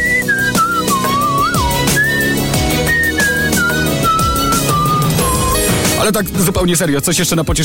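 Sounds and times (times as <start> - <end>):
person whistling a lilting tune: 0.0 - 5.7
steady instrumental music with a regular beat: 0.0 - 6.6
speech: 6.1 - 7.6.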